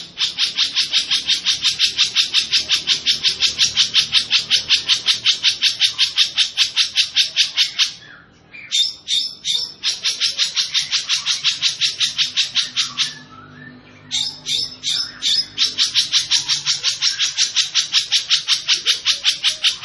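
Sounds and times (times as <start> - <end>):
long-tailed shrike harsh chattering song: 0.0 - 19.8.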